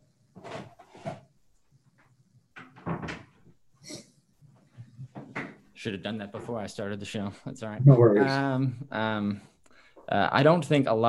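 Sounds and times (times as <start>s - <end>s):
door being handled and shut: 2.6s - 3.4s
speech: 5.8s - 9.5s, 10.1s - 11.0s.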